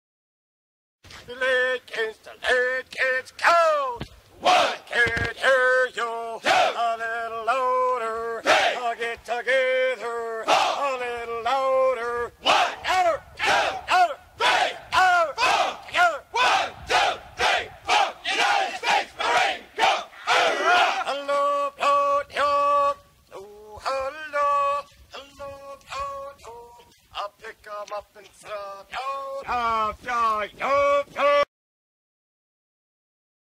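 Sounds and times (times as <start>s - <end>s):
Marine Corps marching cadence: 1.1s - 31.5s.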